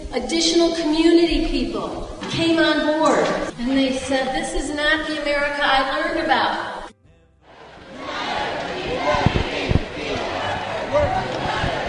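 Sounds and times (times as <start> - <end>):
speech: 0.1 - 6.7
large protest rally crowd chanting: 7.5 - 11.8
sharp claps or thumps: 8.6 - 11.8.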